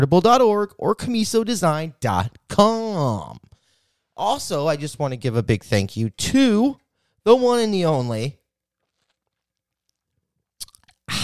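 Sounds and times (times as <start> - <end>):
speech: 0.0 - 3.5, 4.2 - 8.4
slurping sips of water: 8.8 - 11.2.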